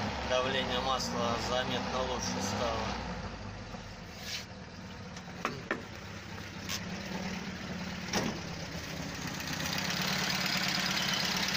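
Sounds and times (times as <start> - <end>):
car engine idling: 0.0 - 11.5
speech: 0.3 - 3.2.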